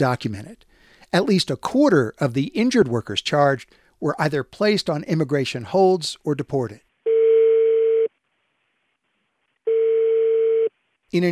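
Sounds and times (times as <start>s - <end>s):
speech: 0.0s - 6.8s, 11.1s - 11.3s
telephone ringback tone: 7.1s - 8.1s, 9.7s - 10.7s.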